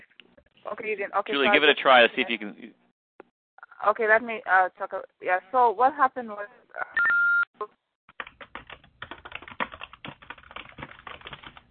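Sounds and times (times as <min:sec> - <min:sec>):
speech: 0:00.7 - 0:02.8, 0:03.8 - 0:06.9
short electronic beep tone: 0:07.0 - 0:07.5
keyboard typing: 0:08.1 - 0:11.6.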